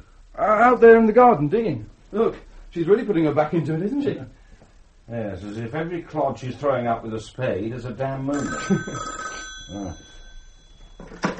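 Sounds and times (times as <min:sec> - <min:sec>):
speech: 0:00.4 - 0:04.4, 0:05.1 - 0:10.2
telephone bell ringing at a farm: 0:08.3 - 0:11.3.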